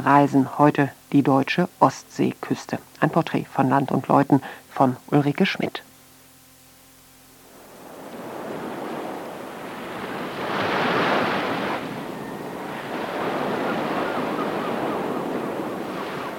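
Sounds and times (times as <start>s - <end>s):
speech: 0.0s - 5.9s
Baltic Sea surf washing onto the German coast: 7.4s - 16.3s
wind rushing across the microphone on the coast: 7.5s - 16.3s.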